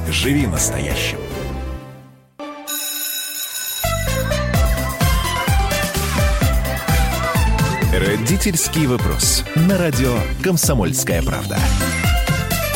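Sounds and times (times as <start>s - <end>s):
speech: 0.1s - 1.4s, 8.0s - 12.2s
electronic ringing jingle with bell-like tones: 2.6s - 7.4s.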